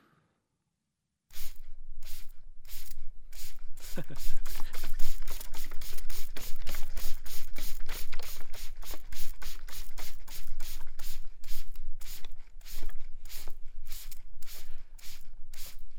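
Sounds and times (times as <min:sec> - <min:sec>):
voice imitating aerosol spray-can bursts: 0:01.3 - 0:15.9.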